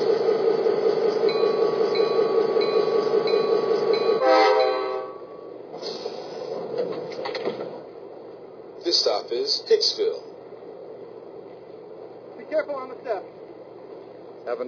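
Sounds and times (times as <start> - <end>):
slowing commuter train clanks and squeals: 0.0 - 7.8
commuter train pulling into station rumble: 0.0 - 14.6
commuter train sustained horn-like tone: 4.1 - 5.5.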